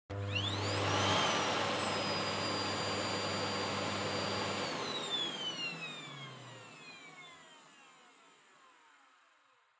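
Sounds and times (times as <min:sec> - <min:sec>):
vacuum cleaner running low: 0:00.1 - 0:09.3.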